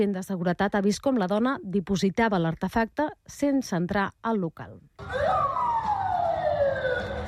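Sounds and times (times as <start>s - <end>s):
speech: 0.0s - 5.6s
police car siren wailing with a downward sliding tone: 5.0s - 7.2s.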